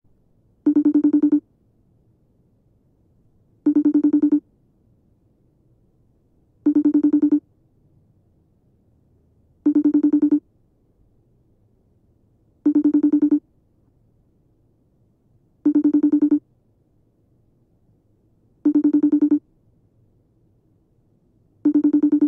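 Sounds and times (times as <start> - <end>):
FaceTime phone sounds: 0.7 - 1.4, 3.7 - 4.4, 6.7 - 7.4, 9.7 - 10.4, 12.7 - 13.4, 15.7 - 16.4, 18.7 - 19.4, 21.7 - 22.2.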